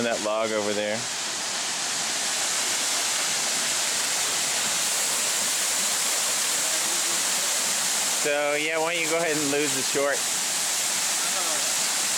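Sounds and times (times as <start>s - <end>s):
speech: 0.0s - 1.2s, 8.2s - 10.3s
roar of rushing water from a waterfall: 0.0s - 12.1s.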